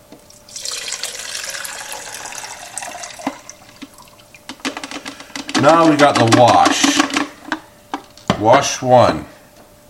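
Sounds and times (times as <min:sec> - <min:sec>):
liquid poured steadily into a beaker: 0:00.3 - 0:04.5
drips and clinks: 0:00.4 - 0:04.5
speech: 0:05.6 - 0:06.9, 0:08.4 - 0:09.3.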